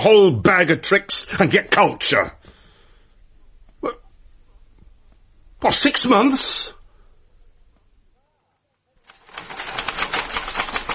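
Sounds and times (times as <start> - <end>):
speech: 0.0 - 2.4, 5.6 - 6.8
typewriter clattering: 9.1 - 10.9.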